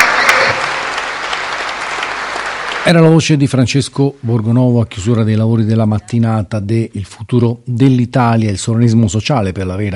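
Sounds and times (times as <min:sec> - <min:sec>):
conference audience applause at the close of a morning session: 0:00.0 - 0:03.3
speech: 0:02.8 - 0:09.9.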